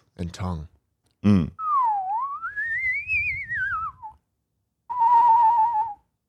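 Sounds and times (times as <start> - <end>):
speech: 0.2 - 1.6
person whistling a melodic line: 1.6 - 4.2, 4.9 - 6.1.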